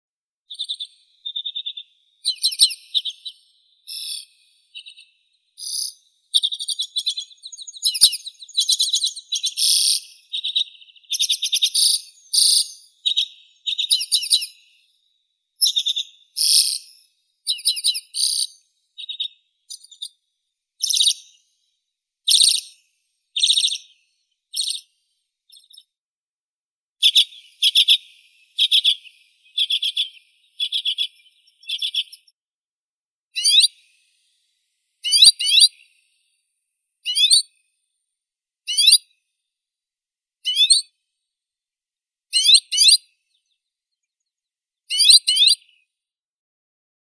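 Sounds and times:
Arctic redpoll Acanthis hornemanni: 0.2 - 14.8, 15.6 - 20.1, 20.8 - 21.4, 22.3 - 24.0, 24.6 - 24.9, 27.0 - 32.3, 35.0 - 35.8, 38.7 - 39.1, 40.5 - 40.8, 42.4 - 43.5, 44.9 - 45.8.

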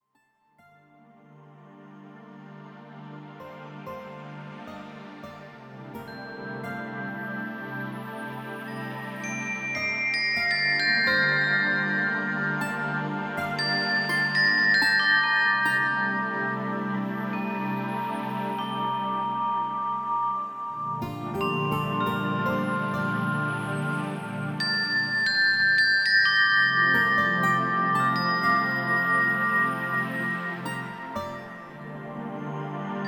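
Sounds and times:
relaxing guitar: 2.6 - 33.0
relaxing bells: 5.6 - 33.0.

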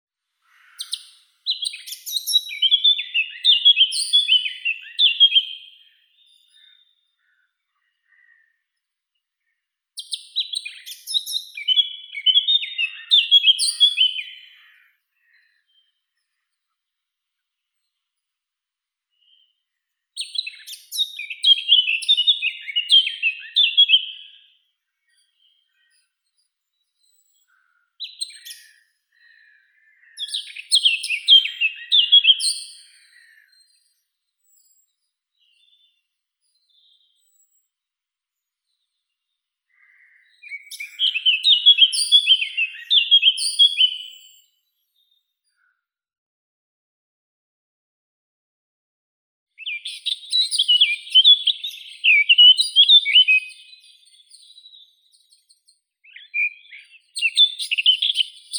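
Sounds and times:
Eurasian blackcap Sylvia atricapilla singing: 0.8 - 7.0, 10.0 - 14.8, 20.2 - 29.4, 30.1 - 37.6, 40.2 - 45.1, 49.6 - 58.5.

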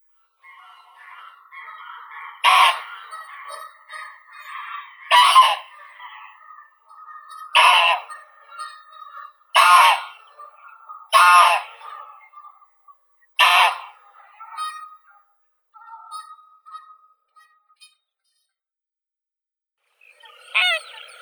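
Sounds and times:
greylag goose Anser anser calling: 0.4 - 12.5, 13.4 - 15.0, 20.4 - 21.2.

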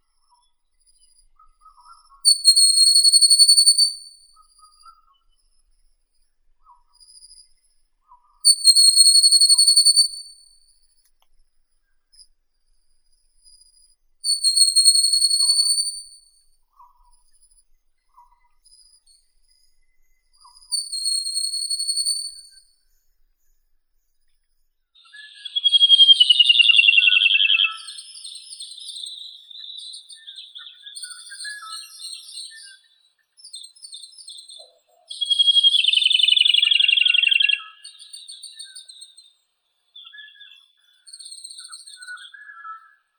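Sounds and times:
whistling nightingale Luscinia sibilans: 2.3 - 4.2, 8.5 - 10.4, 14.3 - 16.2, 20.5 - 22.6, 25.0 - 39.3, 40.0 - 43.1.

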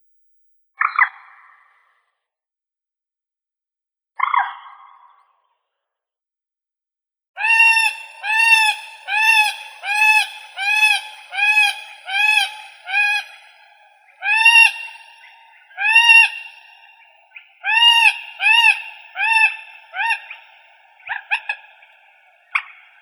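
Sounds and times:
common moorhen Gallinula chloropus calling: 7.4 - 23.0.

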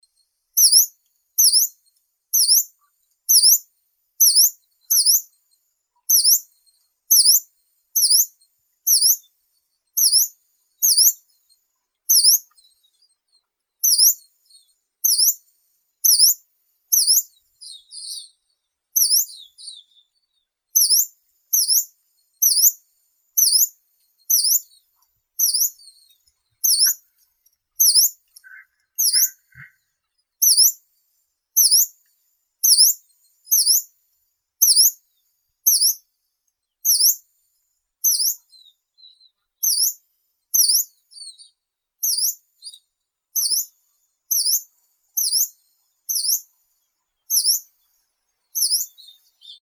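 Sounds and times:
yellow-browed warbler Phylloscopus inornatus calling: 0.6 - 1.7, 2.4 - 2.6, 3.3 - 3.6, 4.2 - 5.3, 6.1 - 6.4, 7.1 - 7.4, 8.0 - 8.3, 8.9 - 9.2, 10.0 - 11.2, 12.1 - 12.5, 13.8 - 15.4, 16.0 - 18.3, 19.0 - 20.1, 20.8 - 22.8, 23.4 - 23.7, 24.3 - 24.8, 25.4 - 27.2, 27.8 - 30.7, 31.6 - 31.9, 32.6 - 33.8, 36.9 - 37.2, 38.0 - 40.0, 40.6 - 42.8, 43.4 - 43.7, 44.3 - 46.4, 47.3 - 47.7, 48.6 - 49.6.

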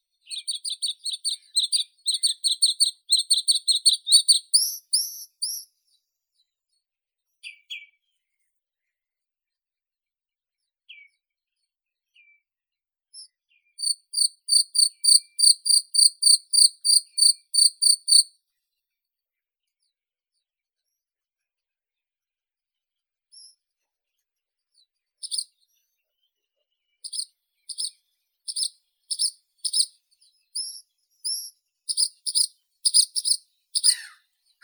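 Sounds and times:
bluethroat Luscinia svecica singing: 0.5 - 4.7, 13.8 - 18.3, 28.5 - 29.9, 31.3 - 34.1.

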